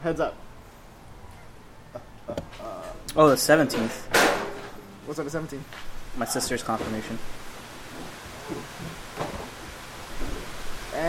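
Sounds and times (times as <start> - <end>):
speech: 0.0 - 0.5, 2.0 - 4.2, 5.1 - 9.1
steady rain: 5.0 - 11.0.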